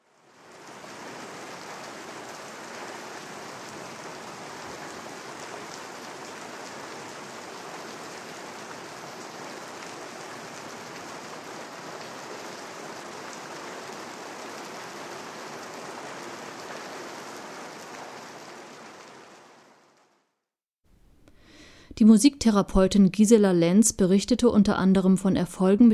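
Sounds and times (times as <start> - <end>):
rain pattering: 0.0 - 20.2
speech: 22.0 - 25.9.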